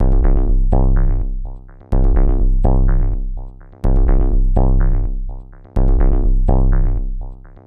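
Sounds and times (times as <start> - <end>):
bass loop: 0.0 - 7.6.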